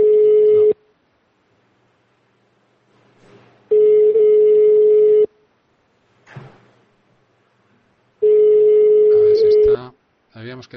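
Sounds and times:
ringing tone on an outgoing telephone call: 0.0 - 0.8, 3.7 - 5.3, 8.2 - 9.8.

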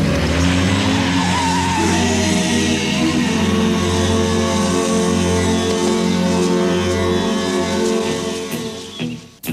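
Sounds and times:
car engine roaring as the car drives off: 0.0 - 9.4
squealing, skidding tyres: 0.0 - 9.4.

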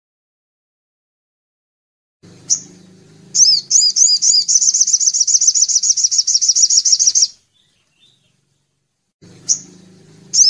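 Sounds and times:
little spiderhunter song: 2.2 - 10.4.

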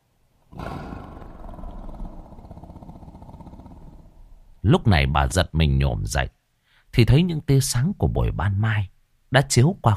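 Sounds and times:
tiger roaring: 0.5 - 4.6
speech: 4.6 - 9.9.

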